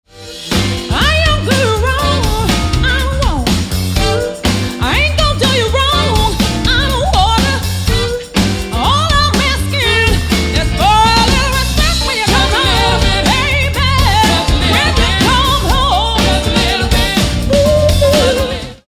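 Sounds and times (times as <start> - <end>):
soul band playing: 0.1 - 18.8.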